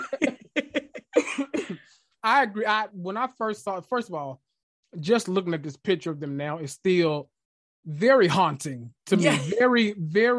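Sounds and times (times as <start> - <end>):
laughter: 0.0 - 1.4
person coughing: 1.1 - 2.0
speech: 2.2 - 10.3.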